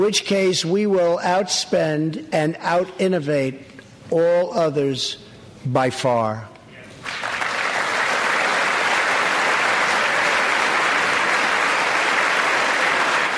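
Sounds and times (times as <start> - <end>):
speech: 0.0 - 7.2
large crowd applauding after a speech: 7.0 - 13.3.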